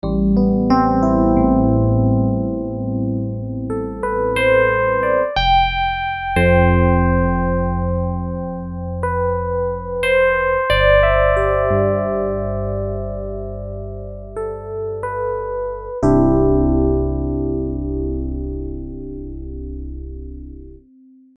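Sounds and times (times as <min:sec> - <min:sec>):
FM Rhodes electric piano: 0:00.0 - 0:20.9.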